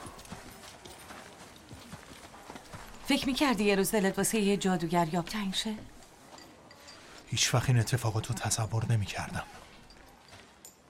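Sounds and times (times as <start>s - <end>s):
horse hooves clip-clopping near a stable: 0.0s - 6.8s, 9.6s - 10.8s
speech: 3.1s - 6.0s, 7.3s - 9.6s.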